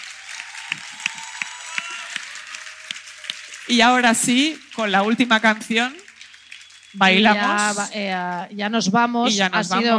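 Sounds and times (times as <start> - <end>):
audience applause: 0.0 - 8.0
speech: 3.7 - 6.0, 6.9 - 9.9.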